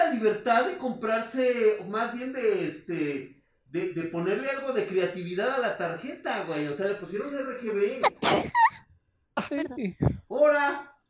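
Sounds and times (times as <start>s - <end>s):
speech: 0.1s - 8.8s, 9.4s - 10.9s
sneeze: 8.0s - 8.8s.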